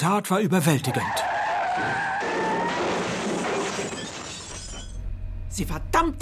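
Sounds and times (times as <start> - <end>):
speech: 0.0 - 2.1, 5.6 - 6.2
car tires screeching in a skid: 0.8 - 4.9.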